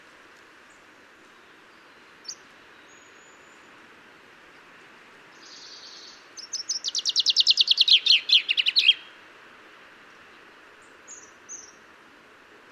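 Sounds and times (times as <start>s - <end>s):
common chaffinch Fringilla coelebs singing: 0.7s - 3.8s, 5.3s - 9.2s, 10.8s - 11.9s.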